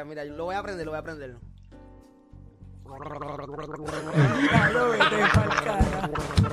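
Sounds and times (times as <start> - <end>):
speech: 0.0 - 1.5, 2.9 - 6.5
jacuzzi water bubbling and gurgling: 2.9 - 4.7
laughter: 3.8 - 6.5.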